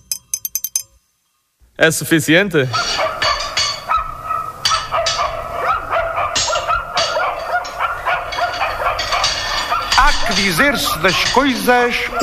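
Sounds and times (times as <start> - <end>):
speech: 1.8 - 3.2, 10.6 - 12.2
dog barking: 2.8 - 11.4, 12.0 - 12.2.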